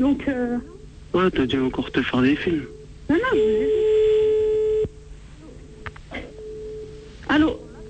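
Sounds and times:
speech: 0.0s - 4.0s, 7.4s - 7.6s
telephone line tone as an outgoing call is placed: 2.7s - 5.0s, 6.2s - 7.1s.

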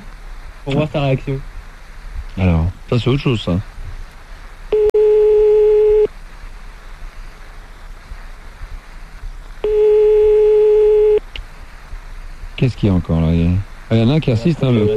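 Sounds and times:
speech: 0.6s - 1.5s, 2.4s - 3.7s, 12.6s - 14.9s
telephone line tone while a call is placed during a radio phone-in: 4.7s - 6.1s, 9.6s - 11.2s, 14.8s - 14.9s.

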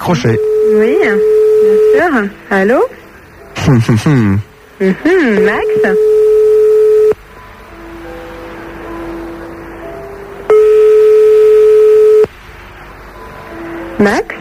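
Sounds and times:
telephone ringback tone over the line: 0.0s - 2.9s, 5.0s - 7.2s, 10.5s - 12.3s
quiet hiss on the telephone line: 0.0s - 14.4s
speech: 0.1s - 3.0s, 3.6s - 6.1s, 14.0s - 14.4s.

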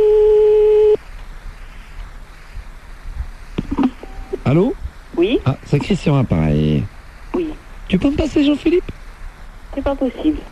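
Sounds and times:
telephone line tone while redialing the same number: 0.0s - 1.0s, 3.8s - 4.4s
faint telephone line hiss: 0.0s - 10.5s
speech: 4.5s - 6.9s, 7.9s - 9.0s, 9.8s - 10.5s.

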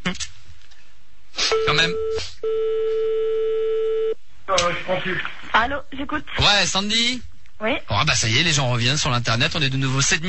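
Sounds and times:
steady telephone line tone while calling back a caller: 1.5s - 4.2s
speech: 1.8s - 2.7s, 4.9s - 10.2s.

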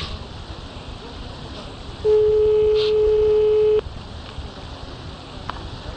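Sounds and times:
faint hiss: 0.0s - 5.9s
telephone ringback tone on outgoing call to a home number: 2.1s - 3.8s.

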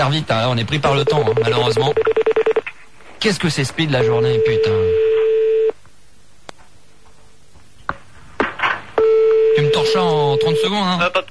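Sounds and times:
speech: 0.0s - 2.4s, 3.2s - 5.0s
brief noisy bursts on a phone line: 0.3s - 5.8s, 9.0s - 11.2s
telephone tone from an outgoing call: 1.0s - 2.6s, 4.0s - 5.8s, 9.0s - 10.7s.

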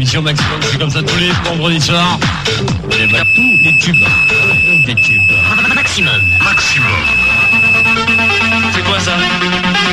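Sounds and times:
speech: 0.0s - 9.9s
loud electronic phone ringtone melody: 3.0s - 9.1s.

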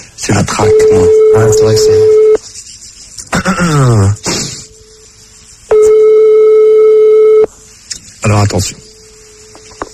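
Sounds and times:
speech: 0.2s - 2.3s, 3.4s - 4.4s, 8.3s - 8.8s
ringback tone of an outgoing telephone call: 0.6s - 2.4s, 5.7s - 7.5s
throaty vocal noise: 3.3s - 4.7s.

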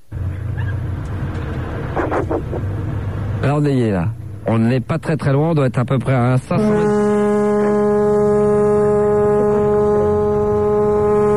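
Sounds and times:
faint rumble: 0.0s - 11.3s
speech: 2.5s - 7.1s
loud sustained buzzy horn blast: 6.5s - 11.3s.

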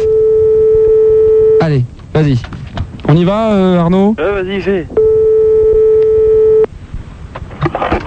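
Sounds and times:
telephone call tone as someone is rung live from a studio: 0.0s - 1.6s, 5.0s - 6.7s
speech: 1.7s - 5.0s.

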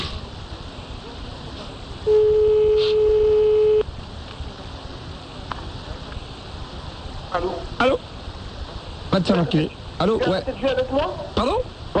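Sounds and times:
hissy telephone line: 0.0s - 11.9s
telephone ringback tone: 2.1s - 3.8s
speech: 7.8s - 8.0s, 9.2s - 11.9s.

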